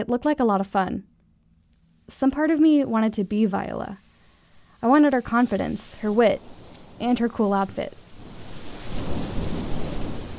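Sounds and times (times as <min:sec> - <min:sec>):
speech: 0:00.0 - 0:01.1, 0:02.1 - 0:04.0, 0:04.8 - 0:08.0
deep rumble of thunder: 0:03.6 - 0:10.3
heavy rain pouring in a film scene: 0:04.0 - 0:10.3.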